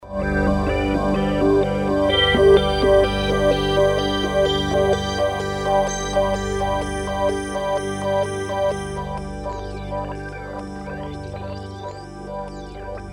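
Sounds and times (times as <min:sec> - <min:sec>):
synth pad with LFO from E-mu Carnaval: 0:00.0 - 0:13.1.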